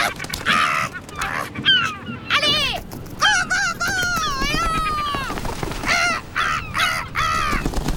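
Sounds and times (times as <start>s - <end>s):
gull in flight crying loudly: 0.0s - 7.6s.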